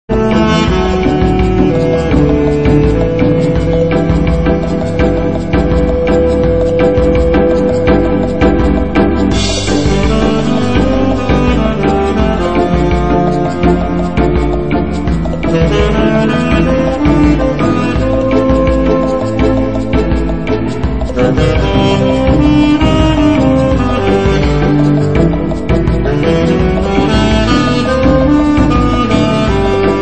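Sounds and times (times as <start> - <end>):
tenor sax: 0.1 - 29.9.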